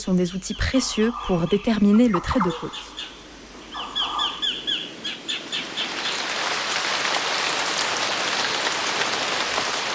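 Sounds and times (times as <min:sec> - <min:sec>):
speech: 0:00.0 - 0:03.2
bird chirps: 0:00.3 - 0:05.9
heavy tropical rain pouring down: 0:03.2 - 0:09.9.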